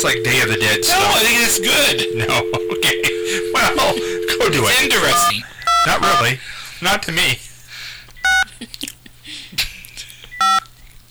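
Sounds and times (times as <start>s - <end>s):
telephone keypad dialing tones: 0.0s - 5.8s
speech: 0.0s - 7.5s, 8.6s - 8.9s.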